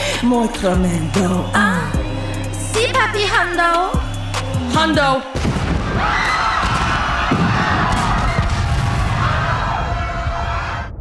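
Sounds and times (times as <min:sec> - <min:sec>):
speech: 0:00.2 - 0:02.0, 0:03.0 - 0:04.0, 0:04.6 - 0:06.4
big loud explosion with sustained roaring blast and low rumble: 0:05.4 - 0:11.0.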